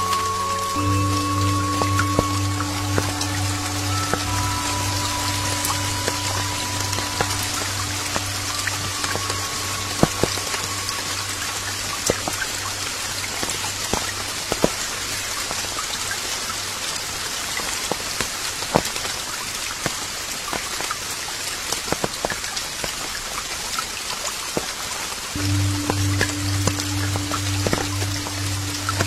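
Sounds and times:
low steady hum: 0.0s - 15.4s, 25.4s - 29.0s
light rain pattering on forest leaves: 0.0s - 29.0s.

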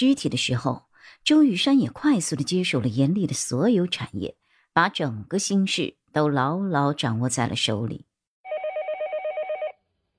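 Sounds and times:
speech: 0.0s - 8.1s
telephone ringing with trilling electronic pulses: 8.5s - 10.0s.

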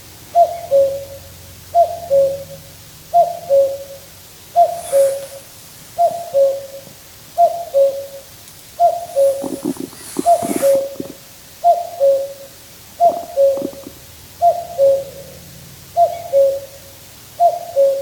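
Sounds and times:
common cuckoo calling cu-coo beside a river in Finland: 0.3s - 4.0s, 4.6s - 5.4s, 6.0s - 12.4s, 13.0s - 15.4s, 16.0s - 16.8s, 17.4s - 17.9s
clicks and rustles: 8.4s - 11.2s.

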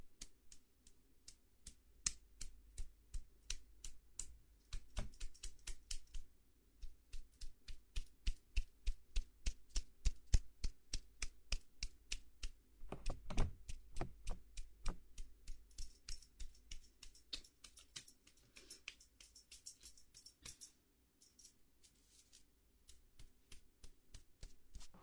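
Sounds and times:
head and shoulder massage taps and pats: 1.6s - 18.3s, 22.9s - 25.0s.

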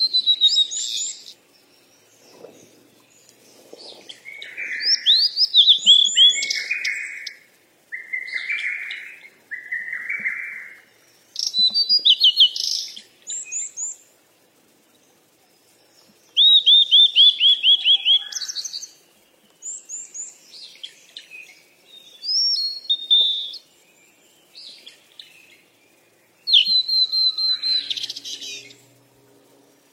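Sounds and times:
bird chirping in quick varied phrases: 0.0s - 14.2s, 14.8s - 29.9s.

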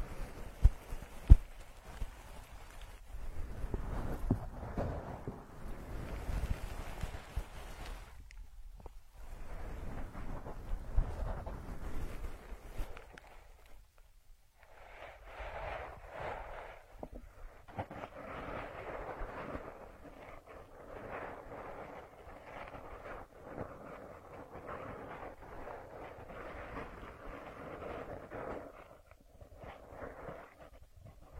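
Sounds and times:
heavy rumbling rubbing against the microphone during ear massage: 0.0s - 8.2s, 8.9s - 13.9s, 14.6s - 31.3s
soft steady mid-pitched rustling: 0.0s - 31.3s.

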